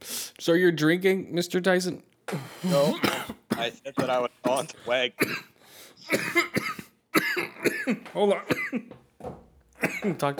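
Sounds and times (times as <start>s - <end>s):
speech: 0.4s - 6.5s, 7.4s - 10.3s
harsh coughing: 2.3s - 9.0s, 9.8s - 10.3s.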